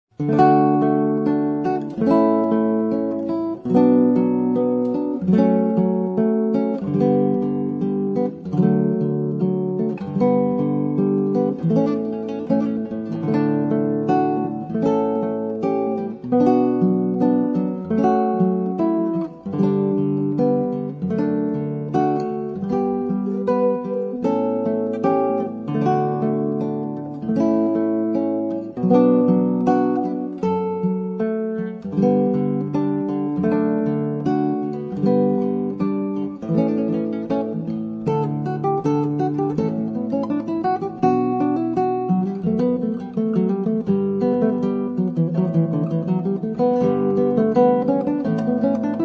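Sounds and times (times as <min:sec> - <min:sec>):
solo guitar: 0:00.0 - 0:49.0.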